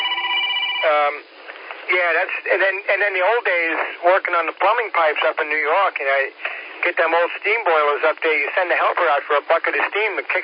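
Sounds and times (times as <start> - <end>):
phone ringing with steady electronic tones: 0.0 - 1.2
speech: 0.8 - 1.3, 1.9 - 10.4.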